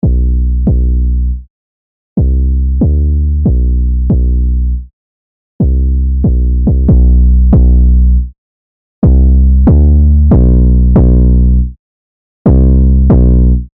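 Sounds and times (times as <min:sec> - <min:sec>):
808: 0:00.0 - 0:01.0, 0:02.2 - 0:04.5, 0:05.6 - 0:07.9, 0:09.0 - 0:11.3, 0:12.5 - 0:13.5.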